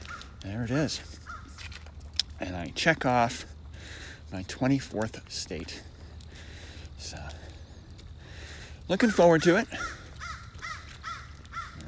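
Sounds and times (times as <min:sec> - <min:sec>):
crow cawing: 0:00.0 - 0:00.4, 0:01.2 - 0:01.6, 0:09.7 - 0:11.8
speech: 0:00.4 - 0:01.2, 0:02.4 - 0:03.5, 0:04.3 - 0:05.9, 0:07.0 - 0:07.4, 0:08.9 - 0:10.0.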